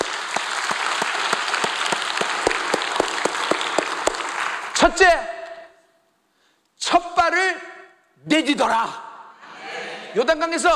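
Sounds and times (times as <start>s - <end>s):
room full of people applauding: 0.0s - 4.8s
speech: 4.8s - 5.3s, 8.2s - 9.0s, 10.1s - 10.7s.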